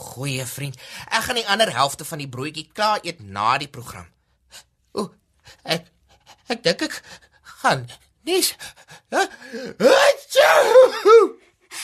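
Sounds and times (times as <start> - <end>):
speech: 0.2 - 5.9, 6.5 - 11.8
person gasping: 8.6 - 9.8, 11.6 - 11.8.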